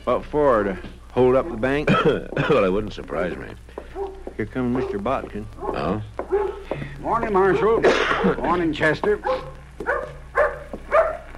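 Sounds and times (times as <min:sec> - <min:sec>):
speech: 0:00.0 - 0:03.7, 0:04.4 - 0:06.2, 0:07.0 - 0:09.5
dog barking: 0:01.3 - 0:01.8, 0:03.9 - 0:06.7, 0:09.2 - 0:11.3.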